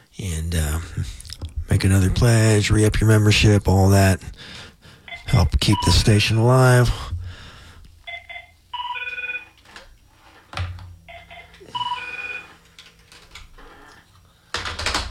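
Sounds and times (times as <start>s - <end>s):
speech: 0.2s - 4.6s, 5.3s - 7.1s
radio station electronic telephone ringing in warbling bursts: 8.1s - 9.6s, 11.1s - 12.6s.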